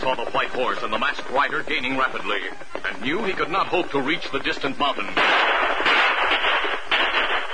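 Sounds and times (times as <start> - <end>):
speech: 0.1 - 5.7
gunshots fired from a revolver by an outlaw on horseback during a chase: 5.2 - 7.5.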